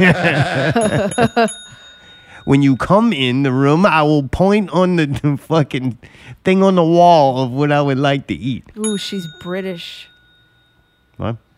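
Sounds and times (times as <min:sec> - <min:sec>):
people chuckling: 0:00.0 - 0:01.5
speech: 0:00.0 - 0:01.6, 0:02.4 - 0:10.1, 0:11.2 - 0:11.4
small bell ringing: 0:00.3 - 0:04.9, 0:08.8 - 0:11.5.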